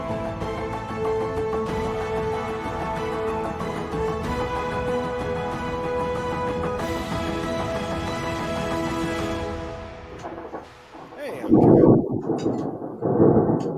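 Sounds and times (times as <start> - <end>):
sustained tonal music: 0.0 - 13.5
thunder rumbling from a thunderstorm: 10.1 - 13.7.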